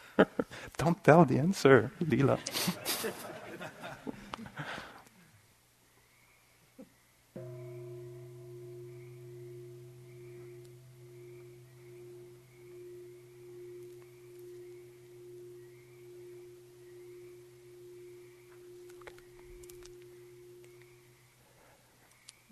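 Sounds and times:
speech: 0.2 - 3.2
laughter: 2.2 - 4.9
meditation bell struck with deep resonant tone: 7.4 - 21.9.

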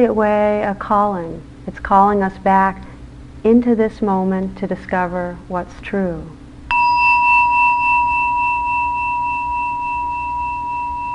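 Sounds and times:
speech: 0.0 - 6.4
mindfulness bell struck and ringing: 6.7 - 11.1.

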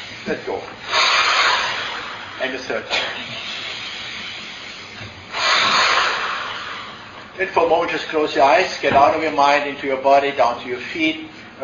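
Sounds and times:
speech: 0.3 - 0.9, 2.4 - 3.5, 7.4 - 11.6
staccato breathing exercise through nose or mouth: 0.8 - 2.6, 3.3 - 7.4.

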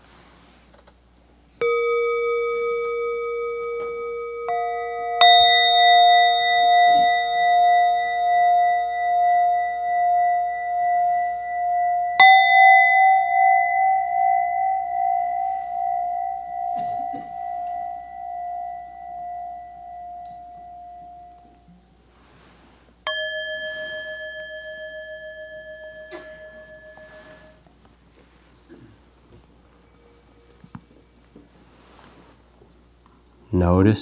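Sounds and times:
meditation bells ringing: 1.6 - 21.7, 23.1 - 27.7
speech: 33.6 - 34.0.

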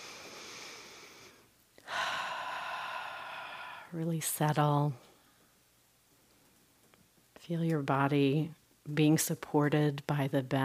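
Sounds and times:
deep breathing during a seated meditation: 0.0 - 4.0
speech: 3.9 - 5.1, 7.4 - 10.6.

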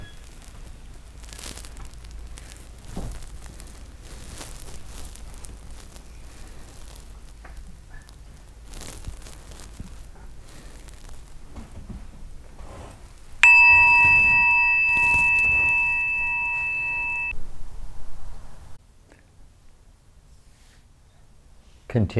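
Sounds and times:
meditation bell struck and ringing: 13.4 - 17.3.

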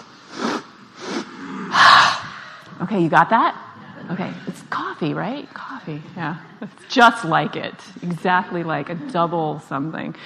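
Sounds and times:
rapid sniffing inhalations during breathing exercise: 0.0 - 2.6
speech: 2.8 - 10.2.

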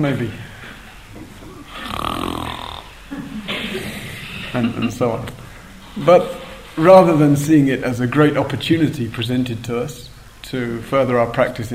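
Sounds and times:
speech: 0.0 - 0.5, 3.8 - 5.4, 6.0 - 11.7
person loudly imitating snoring: 1.6 - 3.1.

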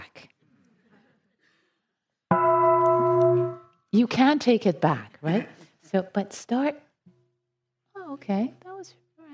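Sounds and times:
large meditation bell ringing: 2.3 - 3.7
speech: 3.9 - 6.8, 8.2 - 9.0.

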